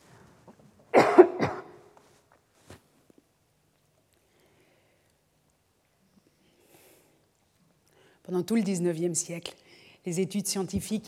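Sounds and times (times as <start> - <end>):
person coughing: 0.9 - 1.9
speech: 8.3 - 11.0.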